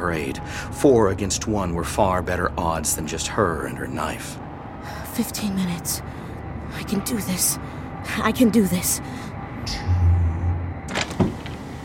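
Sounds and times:
steady low mechanical hum: 0.0 - 11.8
speech: 0.1 - 4.4, 5.2 - 6.2, 6.8 - 9.9
back door being opened: 10.8 - 11.7.

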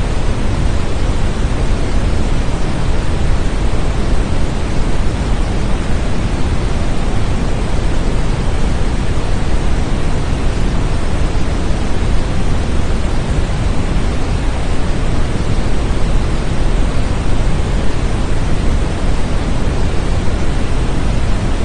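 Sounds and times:
steady red noise with deep rumbling hiss: 0.0 - 21.6.

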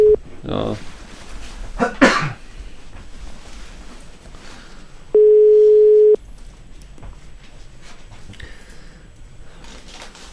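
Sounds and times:
cough-like burst: 1.8 - 2.4
ringback tone of an outgoing phone call from a phone earpiece: 5.2 - 6.2.

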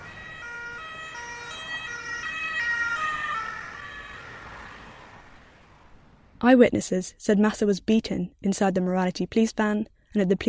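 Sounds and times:
ambulance siren wailing in a two-tone pattern: 0.0 - 6.2
low rumble of street traffic: 0.0 - 7.0
speech: 6.4 - 10.4.

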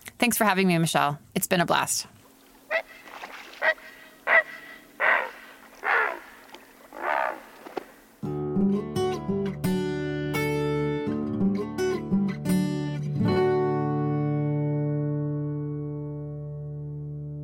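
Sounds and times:
speech: 0.2 - 2.2
great blue heron giving harsh hoarse croaking squawks: 2.6 - 8.2
music: 8.2 - 17.4.

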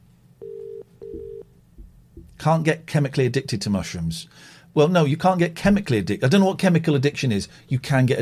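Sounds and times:
faint low hum: 0.0 - 8.2
phone ringing with an incoming call in a double pulse: 0.4 - 1.4
speech: 2.4 - 8.2.

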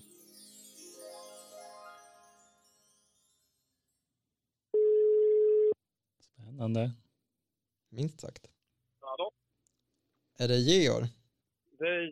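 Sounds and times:
telephone ring tone from an outgoing call: 4.8 - 5.8
speech: 6.6 - 7.0, 7.9 - 8.6, 10.4 - 11.2, 11.8 - 12.1.

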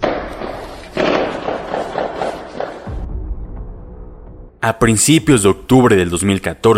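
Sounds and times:
rapid burst of gunshots: 0.0 - 3.1
speech: 4.6 - 6.7.

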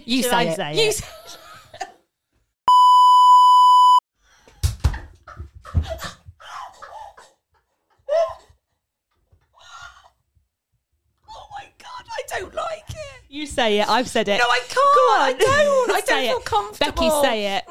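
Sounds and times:
speech: 0.0 - 1.4, 13.6 - 17.7
bits of laughter: 0.9 - 2.1, 5.2 - 8.8
loud steady censor bleep tone: 2.7 - 4.0.

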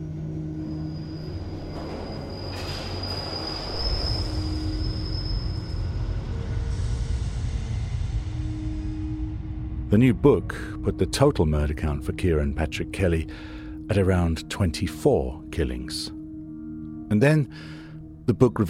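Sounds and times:
thin high wheel squeal of a tube train: 0.0 - 6.7
London Underground tube train rumbling along the tracks: 0.0 - 9.9
speech: 9.9 - 16.2, 17.1 - 18.6.

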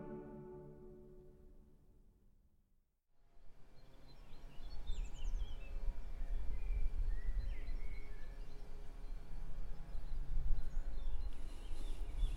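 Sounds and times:
faint bird chirps and song phrases outdoors: 3.8 - 12.3.

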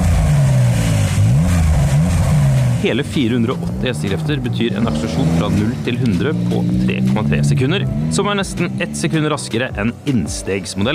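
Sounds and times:
480-horsepower sports car engine revving through sport exhaust: 0.0 - 10.9
speech: 2.8 - 10.9.

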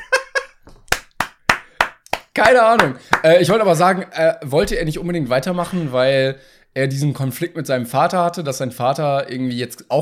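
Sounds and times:
sharp separate handclaps: 0.8 - 3.3
speech: 2.4 - 10.0.

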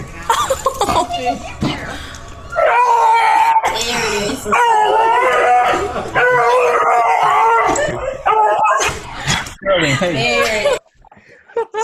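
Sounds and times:
laughter: 0.3 - 1.4, 9.6 - 11.8
speech: 1.2 - 2.2, 3.8 - 6.8, 9.8 - 10.8
dog whining howls wavering in pitch: 2.5 - 3.8, 4.5 - 8.9.

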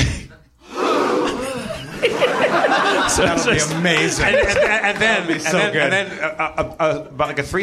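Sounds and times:
crowd gasping together: 0.6 - 4.1
laughter: 0.7 - 7.1
speech: 3.2 - 7.6.

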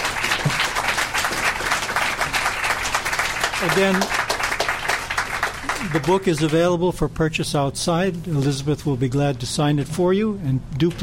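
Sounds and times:
sizable audience applauding: 0.0 - 6.6
speech: 3.6 - 4.2, 5.8 - 11.0.

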